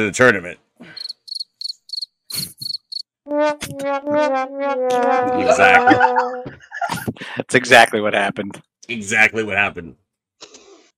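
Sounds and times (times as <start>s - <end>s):
speech: 0.0s - 0.6s, 3.4s - 10.6s
crickets chirping: 1.0s - 3.0s
warbling tonal sound: 3.3s - 6.5s
laughter: 5.2s - 7.6s.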